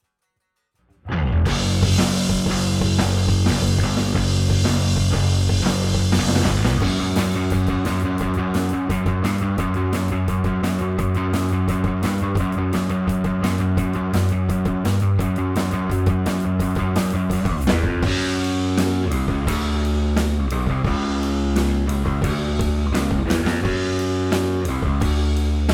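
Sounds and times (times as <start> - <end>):
bass after bass compression: 1.0 - 25.7
drums: 1.1 - 25.7.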